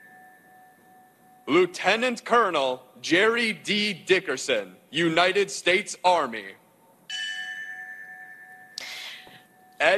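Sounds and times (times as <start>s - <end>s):
memorial bell ringing: 0.0s - 2.1s, 7.1s - 9.9s
speech: 1.5s - 6.6s.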